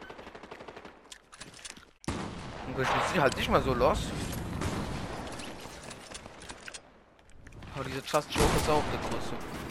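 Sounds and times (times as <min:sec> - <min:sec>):
rapid automatic gunfire in a video game: 0:00.0 - 0:01.1
speech: 0:02.7 - 0:04.4, 0:07.8 - 0:09.6.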